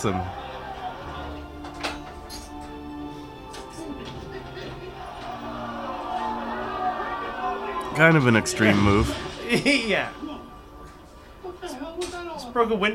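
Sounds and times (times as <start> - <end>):
speech: 0.0 - 0.4, 8.0 - 10.3, 12.6 - 12.9
large crowd cheering and shouting in a movie: 0.0 - 1.9, 3.9 - 9.5
laughter: 0.0 - 10.8.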